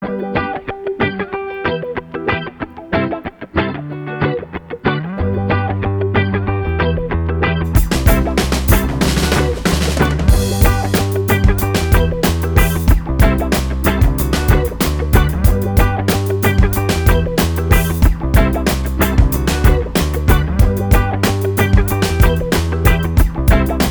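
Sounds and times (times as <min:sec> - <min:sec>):
sweet instrumental reggae music: 0:00.0 - 0:23.8.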